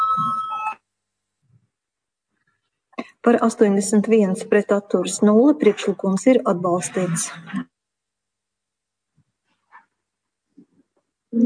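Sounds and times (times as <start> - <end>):
electronic bell rung in a parliamentary chamber to call a vote: 0.0 - 0.8
speech: 3.2 - 7.7.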